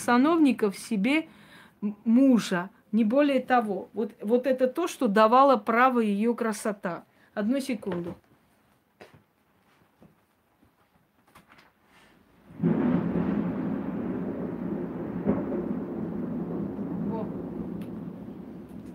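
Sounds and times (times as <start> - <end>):
speech: 0.0 - 8.2
thunder during a thunderstorm: 12.5 - 18.9.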